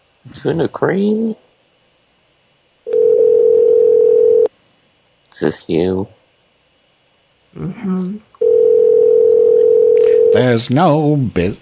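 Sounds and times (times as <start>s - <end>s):
speech: 0.2s - 1.5s, 5.4s - 6.2s, 7.6s - 8.3s, 10.3s - 11.6s
electronic ringing tone of an outgoing phone call: 2.9s - 4.5s, 8.4s - 10.5s.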